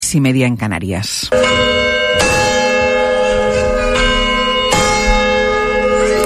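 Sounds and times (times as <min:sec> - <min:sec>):
speech: 0:00.1 - 0:01.8
church bells ringing the hour: 0:01.3 - 0:06.2.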